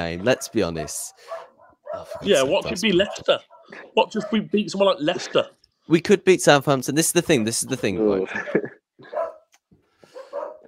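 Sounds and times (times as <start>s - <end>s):
speech: 0.0s - 9.2s
dog barking: 0.2s - 4.6s, 8.5s - 9.5s, 10.1s - 10.6s
laughter: 8.0s - 9.2s.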